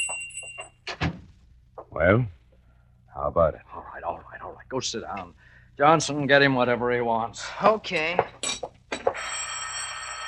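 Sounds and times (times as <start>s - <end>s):
speech: 2.0s - 2.4s, 3.2s - 4.1s, 4.7s - 8.6s
telephone ringing with a shrill bell-like tone: 9.0s - 10.2s.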